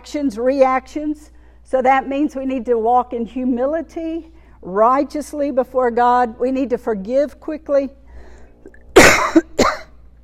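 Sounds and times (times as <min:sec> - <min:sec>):
speech: 0:00.1 - 0:08.0
person coughing: 0:09.0 - 0:10.0.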